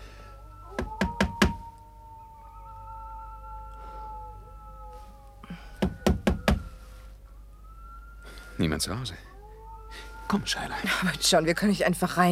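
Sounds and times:
knuckles rapping on the open front door of a house: 0.8 - 1.6, 5.8 - 6.7
speech: 8.6 - 9.3, 10.3 - 12.2.

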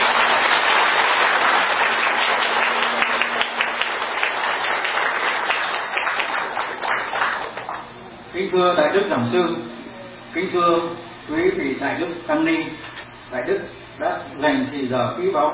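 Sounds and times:
audience applause after a Buddhist dharma talk in a hall: 0.0 - 7.9
speech: 8.5 - 15.5.

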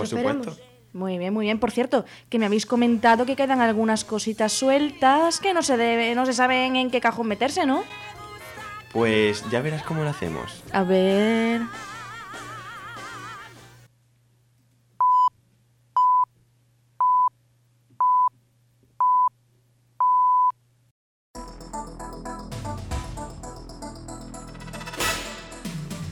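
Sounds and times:
speech: 0.0 - 8.1, 8.9 - 11.9
radio hourly time signal electronic beeps: 15.0 - 15.3, 16.0 - 16.3, 17.0 - 17.3, 20.0 - 20.5.

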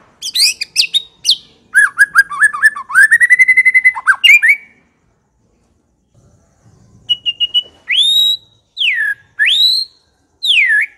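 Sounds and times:
White-rumped shama singing loud varied whistles: 0.2 - 4.8, 6.9 - 10.9.

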